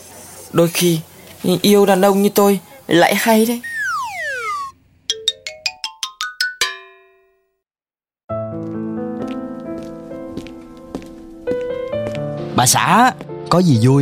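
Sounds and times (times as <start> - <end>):
speech: 0.5 - 3.7, 12.6 - 14.0
quick rising electronic jingle: 3.6 - 7.0
slow mournful music with sustained tones: 8.3 - 13.7.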